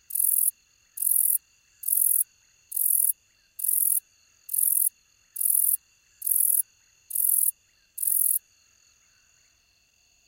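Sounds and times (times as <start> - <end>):
soft continuous insect hum: 0.0 - 10.2
robust shieldback katydid giving raspy high buzzes: 0.1 - 8.4.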